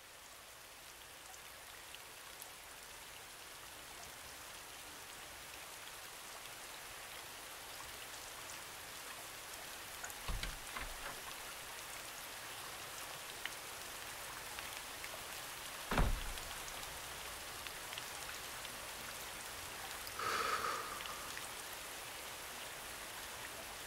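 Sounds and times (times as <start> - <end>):
steady rain pattering on surfaces: 0.0 - 23.8
heavier drips: 10.1 - 11.4, 15.8 - 22.1
brief low thumps: 10.3 - 11.2, 15.9 - 16.6.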